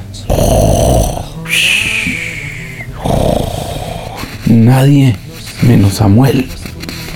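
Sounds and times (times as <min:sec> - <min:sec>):
snoring sound effect with whistling nasal wheeze: 0:00.0 - 0:04.4
speech: 0:04.6 - 0:06.6.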